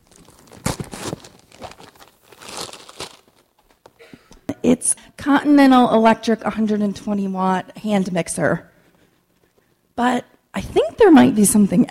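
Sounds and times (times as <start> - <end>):
wrapping paper on a present being torn open: 0.0 - 3.6
speech: 4.6 - 8.7, 10.0 - 10.3, 11.0 - 11.8.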